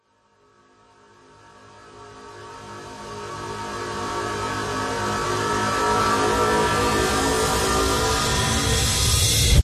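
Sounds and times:
ghostly sinister grinding horror riser: 0:04.6 - 0:09.6.

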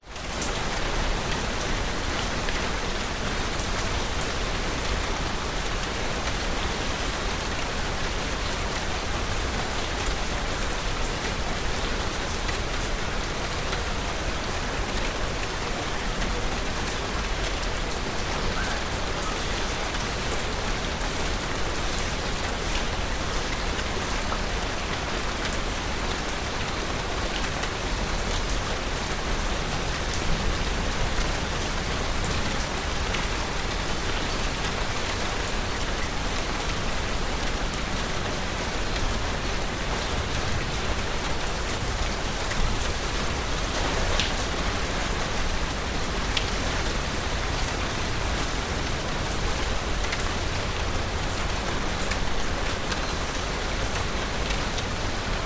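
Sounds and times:
heavy rain in a village in Bali, Indonesia: 0:00.0 - 0:55.4.

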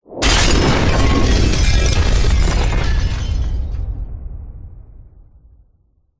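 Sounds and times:
glass breaking: 0:00.2 - 0:03.8
big heavy distorted explosion boom: 0:00.2 - 0:06.0.

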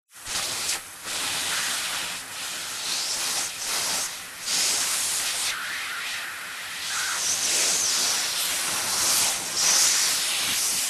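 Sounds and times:
household vacuum cleaner hose suction on carpet: 0:00.3 - 0:06.0, 0:06.7 - 0:10.8.

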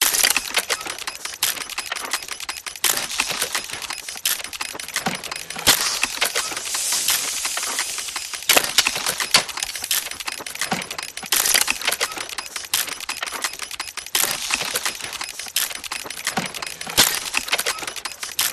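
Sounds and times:
steampunk mechanical loop: 0:00.0 - 0:18.5.

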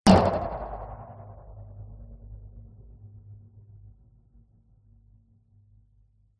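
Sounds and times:
sharp metallic impact: 0:00.1 - 0:01.8
droning tail: 0:00.1 - 0:01.9.

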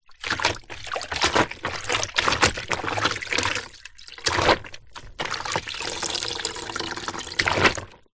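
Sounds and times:
household mop dipping in shallow water in a plastic bucket: 0:00.0 - 0:08.1.

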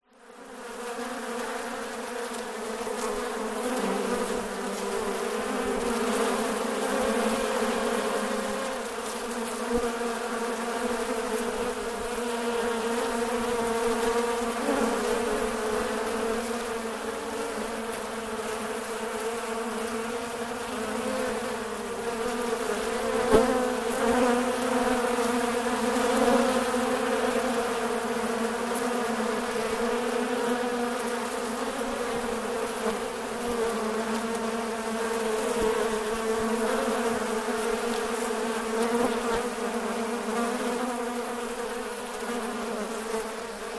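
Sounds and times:
bees swarming: 0:00.2 - 0:43.7.

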